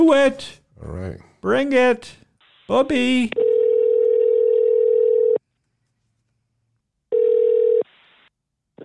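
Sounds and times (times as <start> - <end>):
speech: 0.0 - 3.4
telephone dial tone: 3.4 - 5.4, 7.1 - 7.8.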